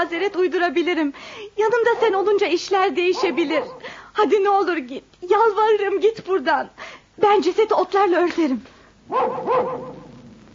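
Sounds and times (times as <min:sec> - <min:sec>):
speech: 0:00.0 - 0:10.0
dogs barking around a house: 0:01.9 - 0:02.3, 0:03.0 - 0:03.9, 0:09.1 - 0:10.3.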